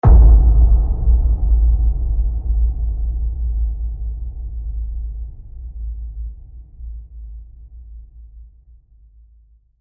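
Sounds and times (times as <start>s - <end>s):
boom collision: 0.0s - 6.4s.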